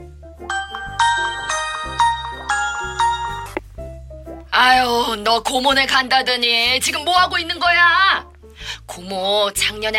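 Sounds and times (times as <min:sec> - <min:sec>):
mobile phone ringtone with chiming electronic melody for an incoming call: 0:00.5 - 0:03.6
speech: 0:04.6 - 0:08.3, 0:08.9 - 0:09.9.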